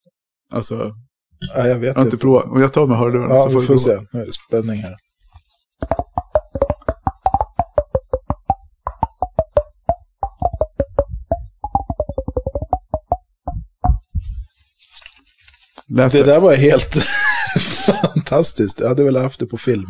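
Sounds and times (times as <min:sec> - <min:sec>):
speech: 0:00.5 - 0:05.1, 0:16.0 - 0:19.8
fingers tapping on a head as percussion: 0:05.8 - 0:14.5
laughter: 0:16.8 - 0:18.5.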